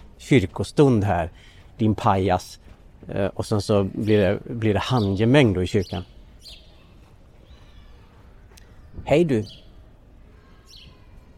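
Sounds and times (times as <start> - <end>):
speech: 0.2 - 6.6, 9.0 - 9.6
bird chirping outside a church: 3.6 - 11.3.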